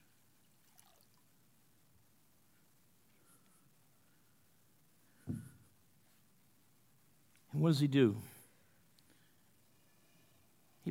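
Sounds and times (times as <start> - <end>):
water poured from a pitcher: 0.5 - 1.3
speech: 7.6 - 8.3.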